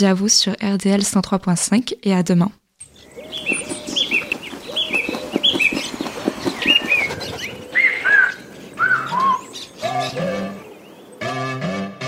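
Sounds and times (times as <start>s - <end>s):
speech: 0.0s - 2.6s
bright bird chirps and tweets: 2.8s - 11.9s.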